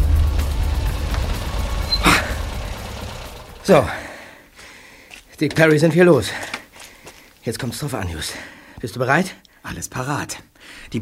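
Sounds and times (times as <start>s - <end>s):
tires crunching on loose sand: 0.0s - 4.2s
car engine humming with a steady low rumble: 0.0s - 4.4s
speech: 3.7s - 4.0s, 5.4s - 6.6s, 7.4s - 11.0s.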